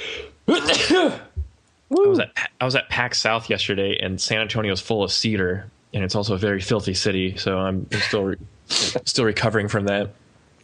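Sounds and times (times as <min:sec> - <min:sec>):
faint noise: 0:00.0 - 0:10.6
loud sneeze: 0:00.5 - 0:01.3
speech: 0:00.5 - 0:01.3, 0:01.9 - 0:10.2.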